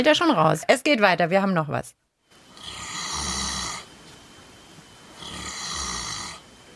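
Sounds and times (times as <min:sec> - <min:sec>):
speech: 0:00.0 - 0:02.0
cow snoring: 0:02.5 - 0:03.9, 0:05.2 - 0:06.5.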